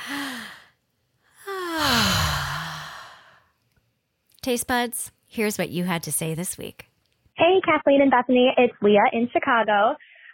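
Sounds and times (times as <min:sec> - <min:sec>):
deep breath drawn in and let out in a long voiced sigh: 0:00.0 - 0:00.8, 0:01.4 - 0:03.5
speech: 0:04.4 - 0:10.0.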